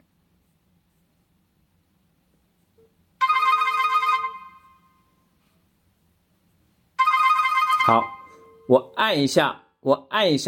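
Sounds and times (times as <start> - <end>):
electronic mobile phone ringtone for an incoming call: 3.2 - 5.0, 7.0 - 8.7
speech: 7.9 - 8.1, 8.7 - 10.4.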